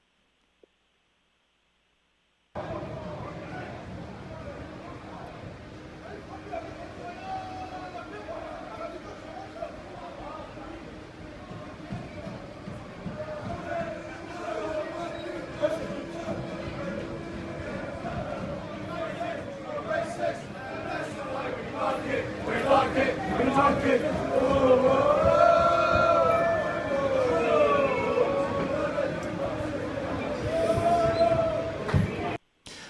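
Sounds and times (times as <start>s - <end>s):
rowdy crowd noise: 2.6s - 32.4s
football supporters chanting: 13.4s - 32.4s.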